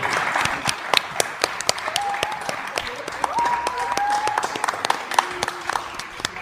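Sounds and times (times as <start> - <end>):
sustained applause from a large indoor audience: 0.0 - 6.3
cheers and whoops: 1.8 - 5.7.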